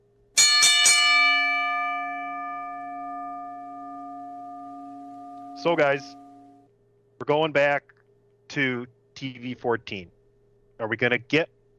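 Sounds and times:
metallic bell strikes with long ringing sustain: 0.4 - 6.6
speech: 5.6 - 6.2, 7.2 - 10.2, 10.8 - 11.7.

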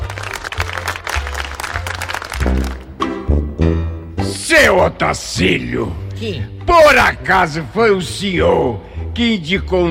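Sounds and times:
crowd applauding: 0.0 - 3.0
speech: 4.8 - 9.8.

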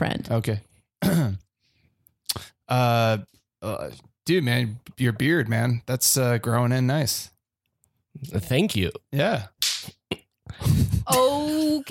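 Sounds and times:
speech: 0.0 - 1.4, 2.7 - 7.3, 8.2 - 10.0, 10.6 - 11.8
sharp slap during an improv scene: 9.6 - 10.1.

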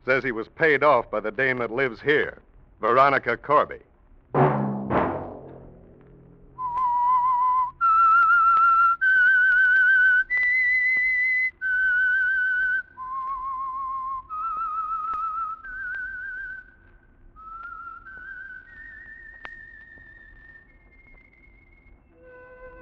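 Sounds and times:
speech: 0.0 - 4.4
low musical burst: 4.4 - 7.2
clear whistled melody of long sustained notes: 6.6 - 16.8, 17.4 - 22.8.

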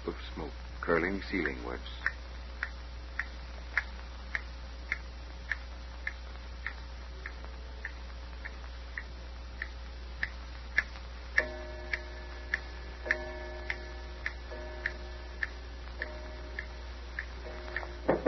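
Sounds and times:
low quiet hum: 0.0 - 18.2
old clock ticking: 0.0 - 18.2
speech: 0.9 - 2.2.

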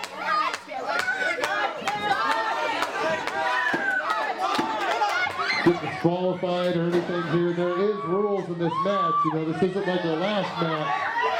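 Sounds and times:
rhythmic claps or stomps: 0.0 - 5.5
wrestling crowd cheering and chanting in a large arena: 0.0 - 11.3
speech: 5.6 - 11.1.

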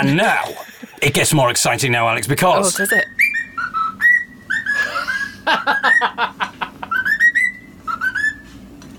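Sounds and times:
speech: 0.0 - 3.2
laughter: 0.3 - 1.1, 4.8 - 7.0
parrot whistling a familiar tune: 2.9 - 6.2, 6.8 - 8.6.

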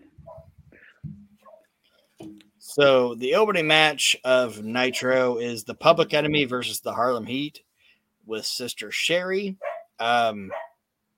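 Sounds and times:
speech: 2.2 - 7.7, 8.3 - 10.6
dog barking excitedly: 9.6 - 10.8.

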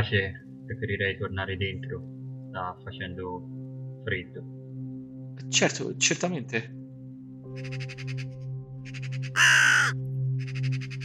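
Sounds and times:
speech: 0.0 - 4.6, 5.4 - 6.8, 7.6 - 8.2
crows cawing: 7.6 - 8.3, 8.9 - 11.0
chattering calls: 9.3 - 11.0.

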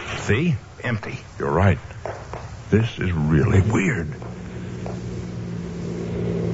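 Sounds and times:
speech: 0.3 - 1.9, 2.7 - 4.3
car driving with lights off, low steady engine drone: 2.7 - 6.5.

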